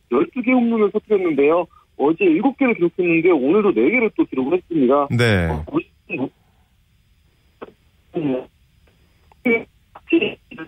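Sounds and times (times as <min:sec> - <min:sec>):
speech: 0:00.1 - 0:06.4, 0:08.2 - 0:08.5, 0:09.4 - 0:10.6
garbled voice over a poor narrow-band telephone line: 0:05.1 - 0:05.7.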